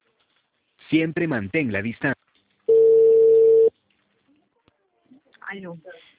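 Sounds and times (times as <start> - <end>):
speech: 0.9 - 2.2, 5.6 - 6.1
telephone beep tone after a dropped call: 2.7 - 3.7.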